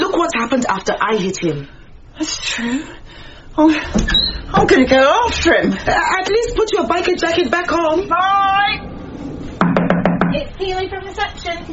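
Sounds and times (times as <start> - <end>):
speech: 0.4 - 8.9, 10.3 - 11.7
quick knocks on a door: 9.6 - 10.4.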